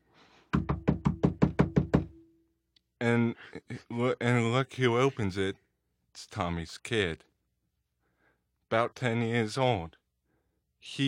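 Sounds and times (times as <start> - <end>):
heavy rapid knocks on a wooden door: 0.5 - 2.2
speech: 3.0 - 5.6, 6.2 - 7.3, 8.7 - 10.0, 10.8 - 11.0.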